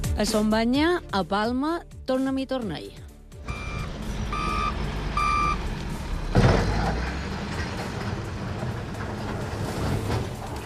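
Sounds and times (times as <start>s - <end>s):
speech: 0.2s - 3.1s
steady low rumble of heavy machinery: 3.4s - 10.6s
excavator reversing beeps: 3.5s - 5.6s.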